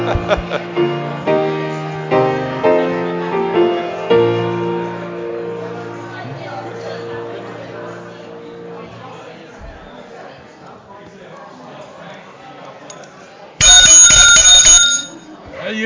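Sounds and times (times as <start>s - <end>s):
laughter: 0.0s - 1.2s
murmuring crowd chatter: 0.0s - 15.8s
speech: 0.1s - 0.9s
bright loud bell ringing rapidly: 13.6s - 15.2s.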